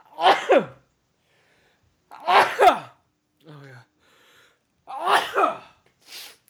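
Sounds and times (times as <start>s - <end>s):
sneeze: 0.1s - 0.8s, 2.2s - 3.0s, 4.9s - 6.4s.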